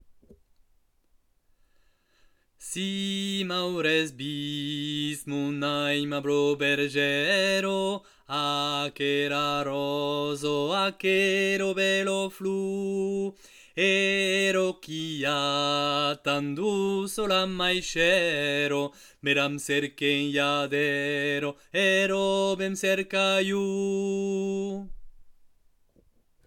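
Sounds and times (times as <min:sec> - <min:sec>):
bass voice singing: 0:02.6 - 0:25.1.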